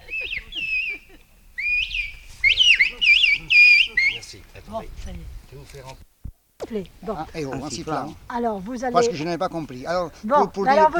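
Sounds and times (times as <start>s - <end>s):
word whistled in a whistled language: 0.0s - 4.3s
speech: 4.7s - 6.1s, 6.7s - 10.9s.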